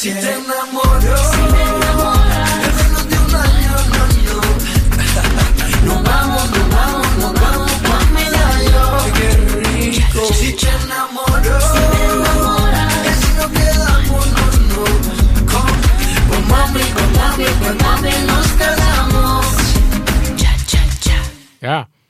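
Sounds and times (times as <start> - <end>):
speech: 0.0 - 1.6
female lead singer: 0.0 - 21.5
backing choir: 0.5 - 4.4, 5.8 - 9.7, 11.2 - 14.9, 15.7 - 19.7
driving beat and bass: 0.9 - 21.3.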